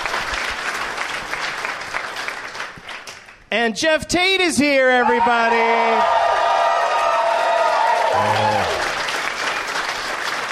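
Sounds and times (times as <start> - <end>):
studio audience clapping: 0.0 - 3.5, 6.2 - 10.5
speech: 3.5 - 6.2
studio audience cheering and whooping: 5.0 - 9.6.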